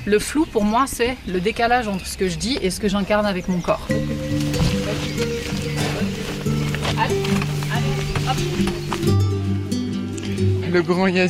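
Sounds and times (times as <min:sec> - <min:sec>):
speech: 0:00.0 - 0:04.4, 0:05.0 - 0:05.7, 0:10.7 - 0:11.2
restless cattle hooves shuffling and stamping: 0:03.6 - 0:09.5.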